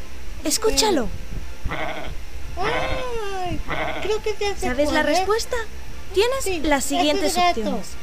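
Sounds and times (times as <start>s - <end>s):
low rumbling background: 0.0s - 8.0s
speech: 0.4s - 2.9s, 3.5s - 8.0s
sheep of a flock in a field bleating: 1.7s - 4.3s.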